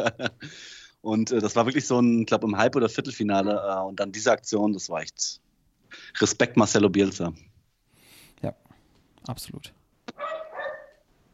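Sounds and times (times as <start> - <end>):
laughter: 0.0 - 0.6
speech: 0.0 - 7.5, 8.4 - 8.6, 9.3 - 10.3
dog barking: 3.3 - 3.7, 10.1 - 11.0.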